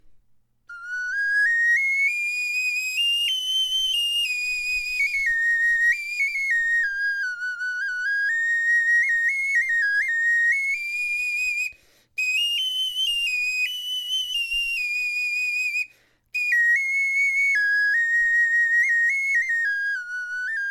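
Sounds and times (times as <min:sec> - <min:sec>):
bone flute improvisation: 0:00.0 - 0:20.6.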